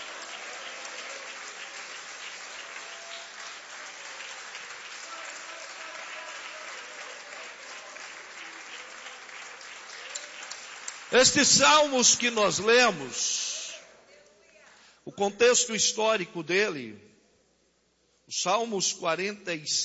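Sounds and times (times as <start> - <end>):
church audience applauding: 0.0 - 13.1
speech: 11.1 - 13.4, 15.2 - 17.1, 18.3 - 19.8.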